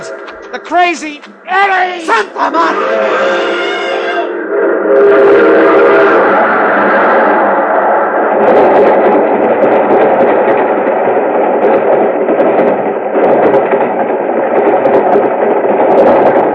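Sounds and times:
laughter: 0.0s - 3.3s
train wheels rumbling and clattering past: 0.0s - 16.5s
speech: 0.5s - 3.7s, 4.5s - 6.2s
train horn: 2.6s - 7.5s.

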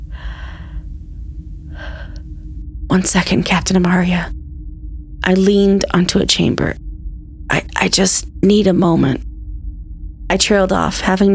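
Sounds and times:
wheezing gasping breaths from someone buckling over mid-step: 0.0s - 0.9s
low rumbling background: 0.0s - 11.3s
speech: 2.9s - 4.4s, 5.3s - 6.8s, 7.5s - 9.3s, 10.3s - 11.3s.

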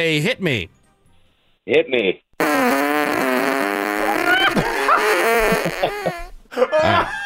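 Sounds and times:
speech: 0.0s - 0.8s, 1.6s - 3.2s, 5.6s - 7.2s
long squeaky tight fart with whistling tone: 2.4s - 6.4s
laughter: 4.2s - 7.2s.

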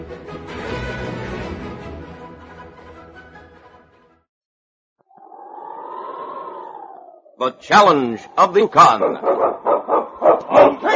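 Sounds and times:
speech: 7.4s - 10.8s
husky sled dogs barking: 7.9s - 10.9s.

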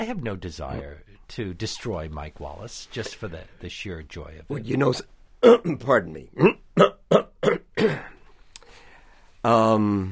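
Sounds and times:
speech: 0.0s - 7.2s, 9.4s - 10.1s
person coughing: 6.4s - 8.2s
throat clearing: 6.4s - 8.2s.

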